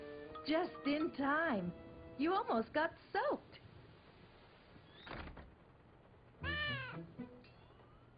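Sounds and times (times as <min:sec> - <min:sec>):
speech: 0:00.5 - 0:03.6
frightened cat meowing: 0:06.4 - 0:07.9.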